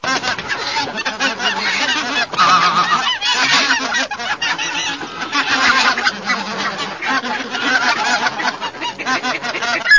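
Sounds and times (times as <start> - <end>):
group of bean geese: 0.0 - 9.9.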